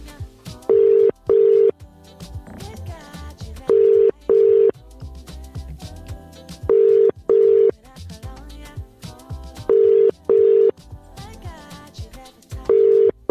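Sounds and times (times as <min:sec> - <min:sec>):
double-burst ringing tone of an outgoing phone call: 0:00.7 - 0:01.7, 0:03.7 - 0:04.8, 0:06.7 - 0:07.7, 0:09.7 - 0:10.7, 0:12.7 - 0:13.2.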